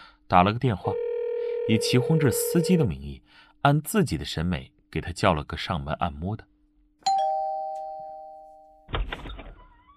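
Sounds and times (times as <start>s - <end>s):
speech: 0.3s - 1.0s, 1.7s - 6.5s
hotel room doorbell chiming: 7.1s - 8.9s.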